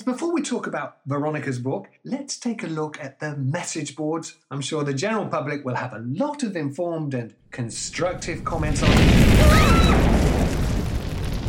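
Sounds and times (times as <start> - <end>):
speech: 0.0 - 10.1
bright crackling debris: 8.0 - 11.4
loud explosion with heavy low-end boom: 8.0 - 11.4
sustained rumbling roar: 8.1 - 11.4.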